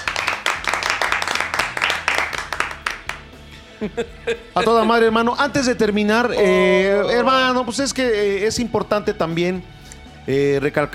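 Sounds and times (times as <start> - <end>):
crowd applause and clapping: 0.0 - 3.3
laughter: 3.6 - 5.2
speech: 3.8 - 10.9.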